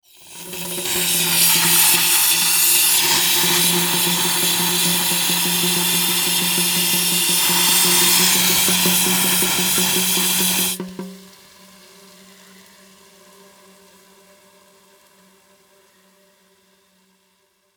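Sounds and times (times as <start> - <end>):
industrial air duster spraying hollow: 0.7 - 10.8.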